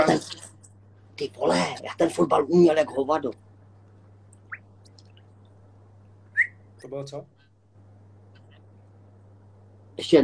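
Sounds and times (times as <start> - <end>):
faint steady low hum: 0.0 - 10.2
speech: 1.2 - 3.4, 6.8 - 7.4, 10.0 - 10.2
person whistling high chirps: 6.3 - 6.7.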